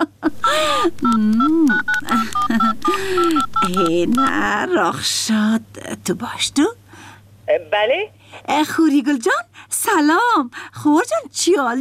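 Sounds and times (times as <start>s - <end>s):
speech: 0.5s - 6.8s, 7.5s - 11.7s
telephone dialing tones as a call is placed: 0.7s - 4.8s.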